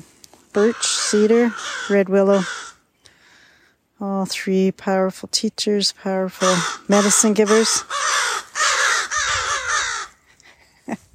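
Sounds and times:
speech: 0:00.0 - 0:02.7, 0:04.0 - 0:08.7
crow cawing: 0:00.6 - 0:02.8, 0:06.4 - 0:10.2.

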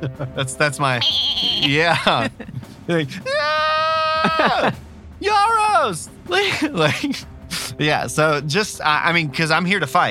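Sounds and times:
speech: 0:00.0 - 0:03.6, 0:04.2 - 0:10.0
person's voice imitating a bleating goat: 0:01.0 - 0:02.3
laughter: 0:01.0 - 0:03.4, 0:04.0 - 0:04.8, 0:06.3 - 0:07.7.

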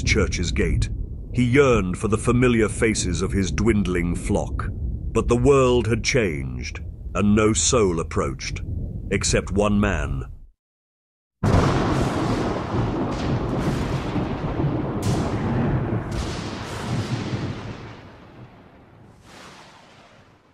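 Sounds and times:
deep rolling thunder: 0:00.0 - 0:09.1, 0:11.4 - 0:20.5
speech: 0:00.0 - 0:10.3
heavy rain downpour: 0:11.4 - 0:20.5.

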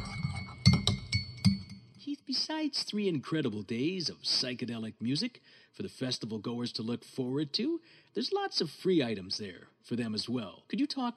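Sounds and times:
cups clinking together in a toast: 0:00.0 - 0:01.8
speech: 0:02.3 - 0:11.1.

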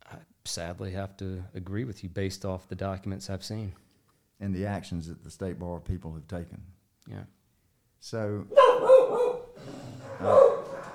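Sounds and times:
speech: 0:00.5 - 0:03.8, 0:04.4 - 0:07.4, 0:08.0 - 0:10.5
dog barking with deep resonant barks: 0:08.5 - 0:10.9.

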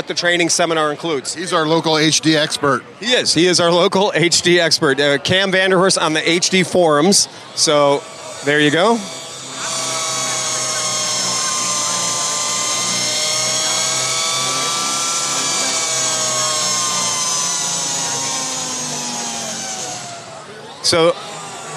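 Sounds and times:
speech: 0:00.1 - 0:09.8, 0:20.9 - 0:21.2
circular saw cutting: 0:05.9 - 0:21.7.

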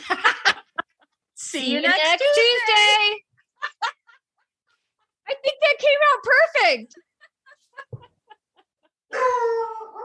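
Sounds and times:
laughter: 0:00.0 - 0:05.1, 0:06.9 - 0:09.1
speech: 0:01.5 - 0:02.8, 0:06.1 - 0:07.1
dog yipping: 0:09.2 - 0:10.0.

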